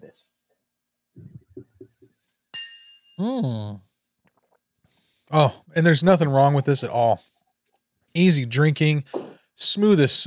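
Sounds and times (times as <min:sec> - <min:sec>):
speech: 0:00.0 - 0:00.4, 0:03.2 - 0:03.8, 0:05.3 - 0:07.3, 0:08.2 - 0:10.2
glasses clinking in a toast: 0:02.6 - 0:03.2.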